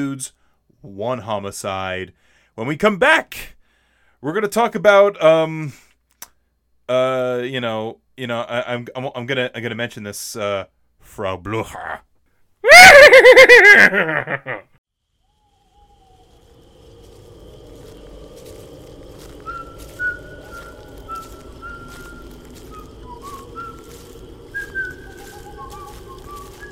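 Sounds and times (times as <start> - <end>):
speech: 0.0 - 3.6, 4.2 - 5.8, 6.9 - 12.1, 12.8 - 14.7
faint high chirps: 15.1 - 26.6
person whistling a tune: 19.4 - 26.6.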